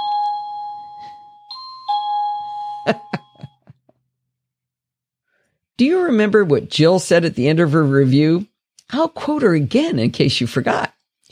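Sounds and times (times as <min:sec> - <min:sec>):
electronic doorbell chiming: 0:00.0 - 0:03.6
speech: 0:02.8 - 0:03.1, 0:05.8 - 0:11.2.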